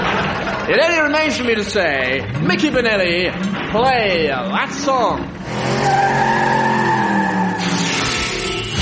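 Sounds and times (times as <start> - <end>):
laughter: 0.0 - 1.6
speech: 0.7 - 6.3
Ferrari sports car tyres squealing in a loud skid: 5.4 - 8.7.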